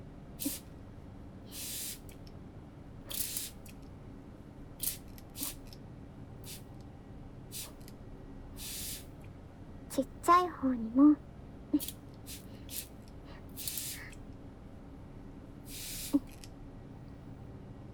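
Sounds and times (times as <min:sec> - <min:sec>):
chemical cleaner sprayed onto a stove burner: 0:00.4 - 0:00.6, 0:01.5 - 0:02.1, 0:03.1 - 0:03.6, 0:04.8 - 0:05.6, 0:07.6 - 0:07.8, 0:08.6 - 0:09.1, 0:11.8 - 0:14.2, 0:15.7 - 0:16.3
speech: 0:10.0 - 0:12.0.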